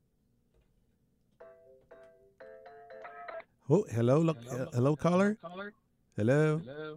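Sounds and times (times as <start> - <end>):
electronic phone ringtone with bright harmonic tones: 1.4 - 3.4
speech: 3.7 - 6.9.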